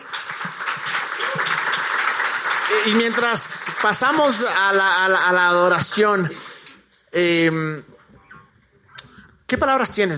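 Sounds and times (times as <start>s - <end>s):
audience applause: 0.0s - 5.3s
speech: 2.7s - 6.5s, 7.1s - 7.9s, 9.5s - 10.1s.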